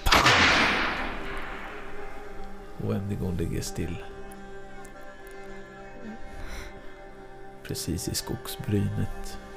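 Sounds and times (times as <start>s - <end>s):
gunshot fired at night echoing across open ground: 0.0s - 2.3s
speech: 2.8s - 4.2s, 7.7s - 9.5s.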